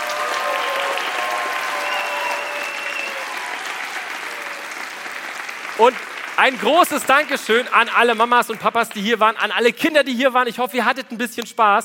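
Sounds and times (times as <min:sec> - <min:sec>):
faint whistles and cheers from an audience: 0:00.0 - 0:05.0
audience applause: 0:00.0 - 0:09.0
speech: 0:05.8 - 0:11.8.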